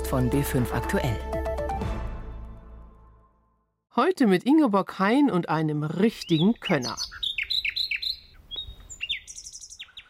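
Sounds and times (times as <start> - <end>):
speech: 0.1 - 1.4, 4.0 - 7.2
nightingale singing: 6.0 - 10.0.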